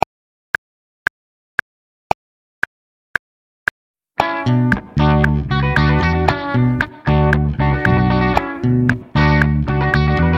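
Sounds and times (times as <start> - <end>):
funk rhythm improvisation: 4.2 - 10.3.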